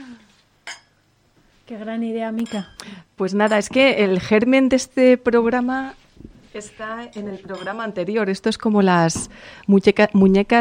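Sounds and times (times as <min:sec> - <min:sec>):
glasses clinking in a toast during a radio programme: 0:00.6 - 0:01.0, 0:02.4 - 0:03.8, 0:07.1 - 0:08.0
speech: 0:01.7 - 0:06.0, 0:06.6 - 0:10.5.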